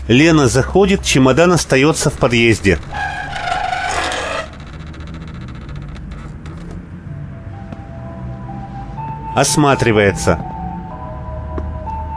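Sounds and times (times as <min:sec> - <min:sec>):
speech: 0:00.1 - 0:03.2, 0:09.4 - 0:10.5
faint clicks and light rattling of a door lock: 0:02.0 - 0:06.8
key pressed in a door lock: 0:02.2 - 0:06.0.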